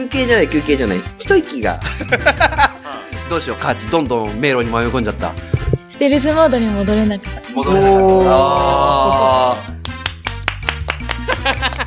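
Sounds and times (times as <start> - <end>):
speech: 0.0 - 2.7, 3.3 - 9.5
laughter: 1.8 - 3.1, 11.2 - 11.8
hand clapping: 9.7 - 11.8.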